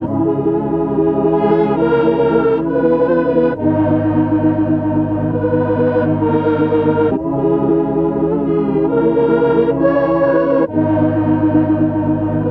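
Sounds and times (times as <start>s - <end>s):
Prophet 6 synth organ in G sharp minor at 135 BPM: 0.0s - 12.5s.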